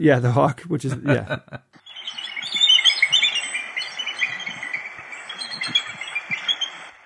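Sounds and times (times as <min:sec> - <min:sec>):
speech: 0:00.0 - 0:01.7
laughter: 0:00.8 - 0:01.6
younger bald eagles chittering at a preserve near Haines, Alaska: 0:01.8 - 0:07.0.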